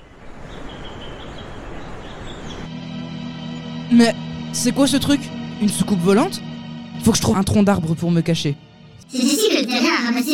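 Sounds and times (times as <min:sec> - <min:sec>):
faint bird chirps in a forest: 0:00.0 - 0:02.7
speech: 0:03.9 - 0:10.3.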